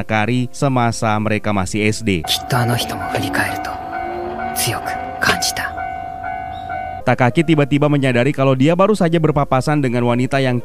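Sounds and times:
speech: 0.0 - 3.8, 4.6 - 5.8, 7.1 - 10.6
train rumbling past a railway crossing: 2.2 - 7.7
steady ringing tone at a railway crossing: 2.3 - 7.5.

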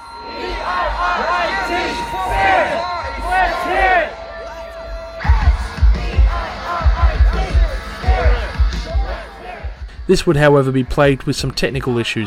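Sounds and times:
large concert crowd cheering and shouting: 0.0 - 12.2
heavy low thumping: 5.2 - 10.1
speech: 10.1 - 12.2.

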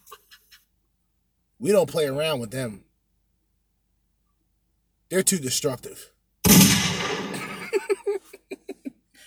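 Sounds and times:
speech: 1.6 - 2.9, 5.1 - 6.1
short clipped gunshot bursts: 6.5 - 7.6
gunshot sound effect: 6.5 - 7.8
laughter: 7.1 - 8.9.

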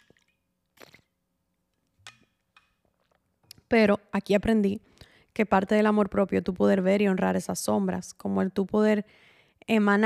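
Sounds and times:
person gulping and swallowing water: 0.0 - 1.2
speech: 3.7 - 10.0.

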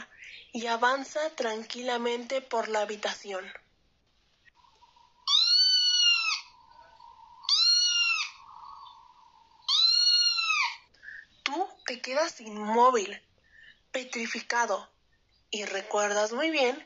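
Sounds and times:
speech: 0.5 - 3.6, 12.0 - 13.3, 13.9 - 14.9, 15.5 - 16.8
cat meowing with long drawn-out calls: 5.2 - 6.5, 7.4 - 8.4, 9.7 - 10.8.

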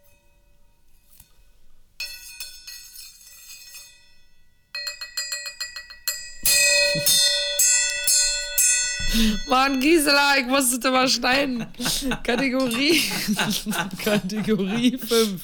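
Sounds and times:
metallic gong being struck: 6.4 - 9.8
speech: 7.0 - 7.3, 9.2 - 15.4
laughter: 10.5 - 15.4.

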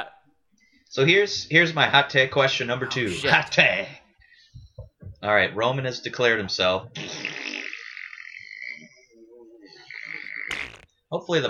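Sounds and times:
speech: 0.9 - 4.0, 5.2 - 7.2, 11.1 - 11.4
low rumbling fart: 7.0 - 8.9, 9.8 - 10.9.

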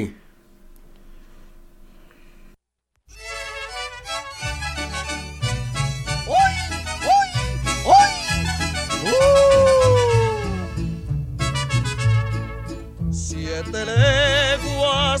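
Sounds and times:
corrido with bass beat and band melody: 3.1 - 15.1.

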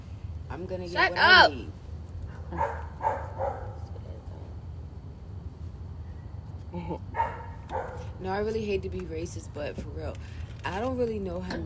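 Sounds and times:
steady low rumble of noise: 0.0 - 11.6
speech: 0.6 - 1.8, 2.5 - 3.2, 6.8 - 7.1, 8.2 - 11.6
dog barking: 2.3 - 3.9, 7.1 - 8.2.

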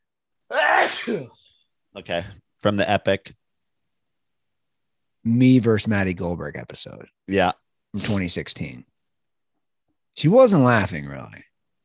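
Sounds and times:
sneeze: 0.5 - 1.4
speech: 1.0 - 3.4, 5.2 - 8.9, 10.2 - 11.5.

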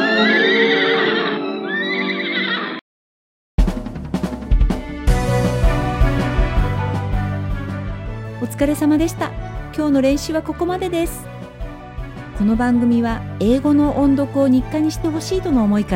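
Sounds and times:
horse whinny: 0.0 - 2.8
busy music with strong beats: 3.6 - 8.3
speech: 8.6 - 11.3, 12.4 - 15.9.

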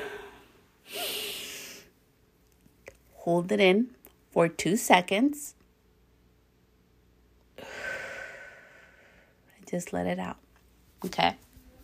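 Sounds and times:
deep breath in during a guided relaxation exercise: 0.0 - 1.9, 7.6 - 9.4
speech: 3.3 - 5.6, 9.7 - 10.4, 11.0 - 11.4.

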